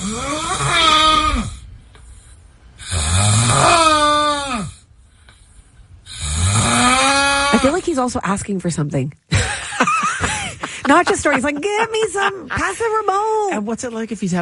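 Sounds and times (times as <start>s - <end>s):
man snoring loudly: 0.0s - 1.6s, 2.8s - 4.9s, 6.0s - 7.7s
speech: 8.0s - 9.4s, 10.9s - 14.4s
laughter: 9.3s - 13.1s.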